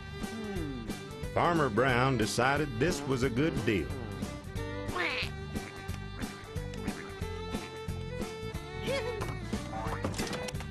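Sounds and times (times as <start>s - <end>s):
steady musical background: 0.0s - 10.6s
speech: 1.4s - 4.0s
duck quacking: 4.9s - 5.8s.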